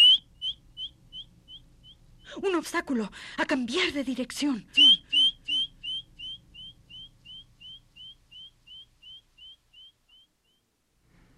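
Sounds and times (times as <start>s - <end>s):
simulated audible bat call chirps with echo: 0.0s - 2.0s, 4.8s - 10.7s
speech: 2.4s - 5.2s.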